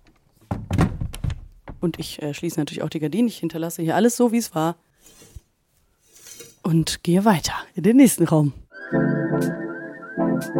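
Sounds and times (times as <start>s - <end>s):
balcony door frame and latch rattling: 0.0s - 1.9s
balcony door pushed shut: 0.4s - 2.0s
speech: 1.8s - 5.2s, 6.6s - 9.6s, 10.4s - 10.5s.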